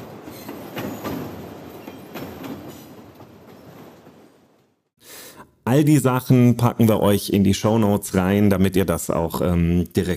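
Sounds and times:
train running on rails with clacking: 0:00.0 - 0:04.9
speech: 0:05.7 - 0:10.1.

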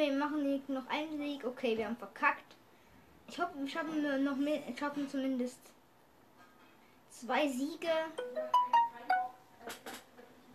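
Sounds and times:
speech: 0:00.0 - 0:02.6, 0:03.3 - 0:05.8, 0:07.1 - 0:08.8
game invitation notification tone: 0:08.2 - 0:09.5.

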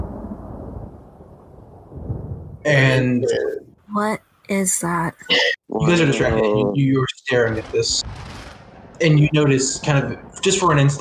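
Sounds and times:
deep rolling thunder rumble from a lightning strike: 0:00.0 - 0:03.8, 0:07.3 - 0:11.0
speech: 0:02.6 - 0:08.3, 0:09.0 - 0:11.0.

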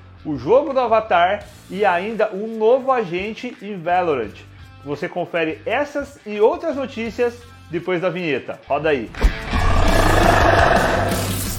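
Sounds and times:
speech: 0:00.2 - 0:09.4
lion roaring: 0:09.2 - 0:11.3.

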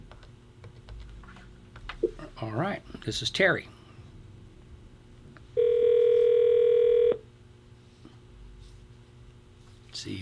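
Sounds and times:
speech: 0:02.4 - 0:03.8
telephone tone as a phone number is dialed: 0:05.6 - 0:07.2.

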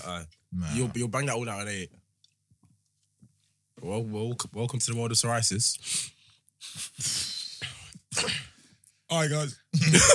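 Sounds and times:
speech: 0:00.0 - 0:02.0, 0:03.8 - 0:08.5, 0:09.1 - 0:10.1
person sneezing: 0:06.8 - 0:08.6.

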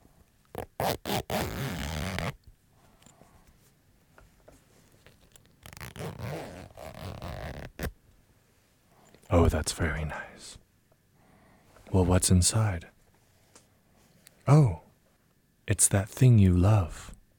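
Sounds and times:
clutch bag zipper opening and closing: 0:00.5 - 0:02.4, 0:05.0 - 0:07.9
speech: 0:09.4 - 0:10.6, 0:11.9 - 0:12.9, 0:14.5 - 0:14.8, 0:15.7 - 0:17.1.

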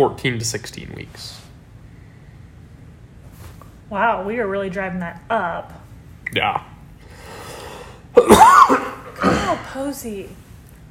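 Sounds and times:
speech: 0:00.0 - 0:01.4, 0:03.9 - 0:06.7, 0:08.2 - 0:10.4
single sharp cough: 0:08.2 - 0:09.8.

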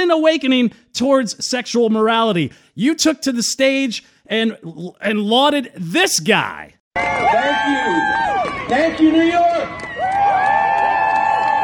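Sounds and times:
speech: 0:00.0 - 0:07.7, 0:08.7 - 0:09.5
large rally crowd in New York cheering: 0:07.0 - 0:11.6
shouts and whoops from a rally crowd: 0:07.0 - 0:11.6.

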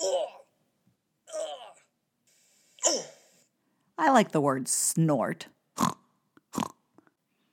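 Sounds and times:
person imitating grunts: 0:00.0 - 0:00.5, 0:02.8 - 0:03.2
speech: 0:04.0 - 0:05.6.

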